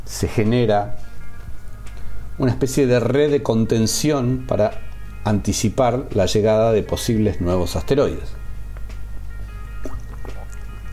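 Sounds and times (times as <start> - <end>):
speech: 0.1 - 1.0, 2.4 - 8.4
person sipping and gulping water: 9.4 - 10.9.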